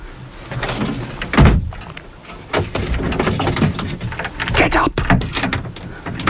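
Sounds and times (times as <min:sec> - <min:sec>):
heavy metal cell door sliding and slamming shut: 0:00.6 - 0:06.2.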